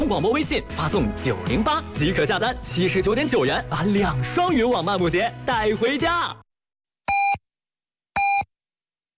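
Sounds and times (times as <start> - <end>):
speech: 0.1 - 6.4
radio half-hour time signal electronic beeps: 8.2 - 8.5.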